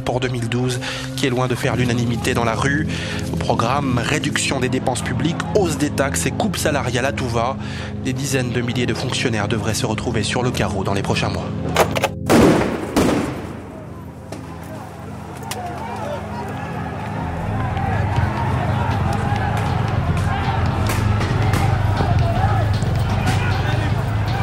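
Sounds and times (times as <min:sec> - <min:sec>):
speech: 0:00.0 - 0:12.1
stun grenade blasts at a street protest in Athens: 0:12.3 - 0:13.8
crowd noise roar at a street protest in Athens: 0:13.5 - 0:24.4
people shouting at a street protest in Athens: 0:13.7 - 0:24.4.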